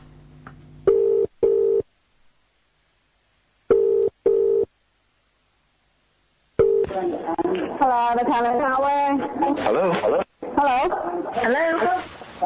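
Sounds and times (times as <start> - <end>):
telephone ringback tone in double bursts: 0.9 - 1.8, 3.7 - 4.7, 6.6 - 6.9
speech: 7.0 - 12.4.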